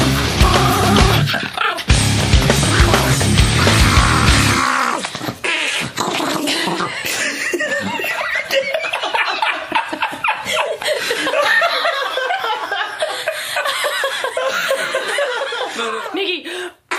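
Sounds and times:
loud busy band music: 0:00.0 - 0:01.3, 0:01.9 - 0:04.7
small family dog whimpering and growling in a sing-song way: 0:01.2 - 0:01.9, 0:03.6 - 0:07.0
laughter: 0:06.5 - 0:16.4.

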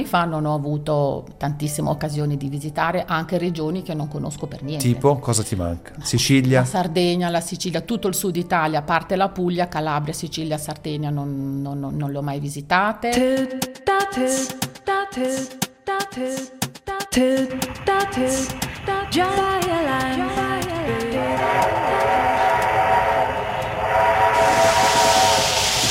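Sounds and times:
speech: 0:00.0 - 0:22.5
loud hissing steam of old steam train: 0:18.2 - 0:25.8
old 19th-century steam train whistle blowing: 0:20.9 - 0:25.8.

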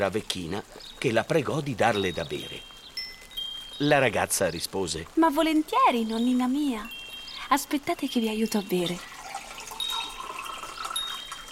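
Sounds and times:
speech: 0:00.0 - 0:02.7, 0:03.8 - 0:09.1
fresh water pouring into a cup: 0:08.7 - 0:11.4.

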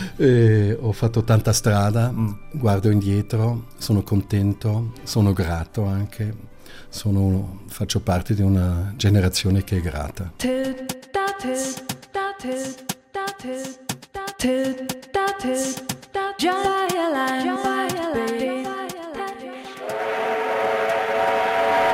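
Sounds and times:
speech: 0:00.2 - 0:18.8
train chugging: 0:19.8 - 0:21.9.

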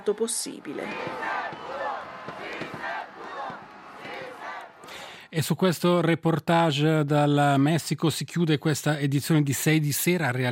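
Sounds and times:
speech: 0:00.0 - 0:01.6, 0:05.3 - 0:10.5
large crowd in Mexico chanting in unison for a team: 0:00.0 - 0:05.2
scattered yells from a crowd: 0:00.6 - 0:04.9.

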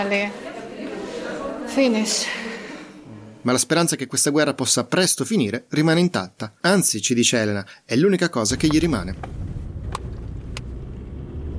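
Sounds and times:
speech: 0:00.0 - 0:00.6, 0:01.7 - 0:02.5, 0:03.4 - 0:09.5
car engine rumble while driving through deserted city streets: 0:08.5 - 0:11.5.

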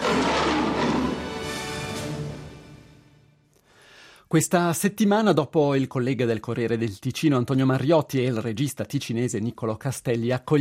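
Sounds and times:
big cat roar: 0:00.0 - 0:01.7
speech: 0:04.3 - 0:10.6.

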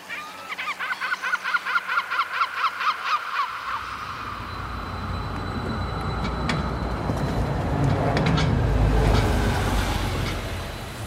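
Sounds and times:
hungry seagulls squawking: 0:00.0 - 0:06.8
steady rumbling wash of noise: 0:03.6 - 0:11.0.

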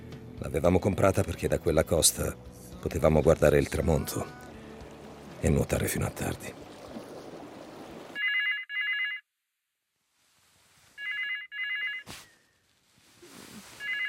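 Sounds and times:
speech: 0:00.4 - 0:04.4, 0:05.4 - 0:06.6
telephone ringing with an electronic trill in a wooden beach house: 0:08.2 - 0:09.2, 0:11.0 - 0:12.0, 0:13.8 - 0:14.0.

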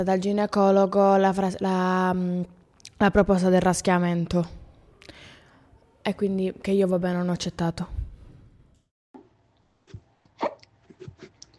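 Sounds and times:
speech: 0:00.0 - 0:05.2, 0:06.0 - 0:08.0
person hiccuping: 0:10.4 - 0:11.5.

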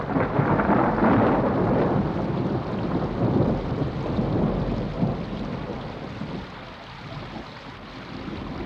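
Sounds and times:
deep rolling thunder of a winter thunderstorm: 0:00.0 - 0:06.5
steady heavy rain: 0:00.0 - 0:08.6.

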